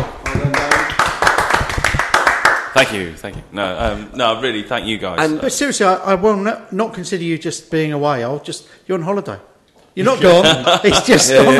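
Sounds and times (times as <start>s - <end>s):
hands clapping: 0.0s - 2.8s
speech: 2.8s - 11.5s
laughter: 10.0s - 11.5s.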